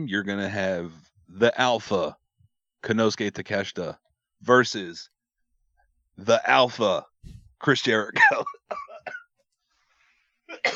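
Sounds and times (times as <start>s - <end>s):
speech: 0.0s - 2.2s, 2.8s - 5.1s, 6.2s - 9.2s
person coughing: 8.2s - 9.4s, 10.5s - 10.7s.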